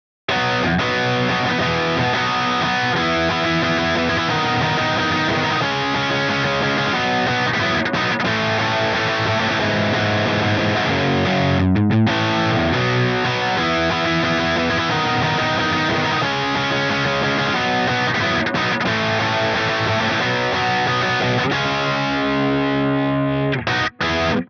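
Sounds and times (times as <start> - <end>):
guitar: 0.3 - 24.4.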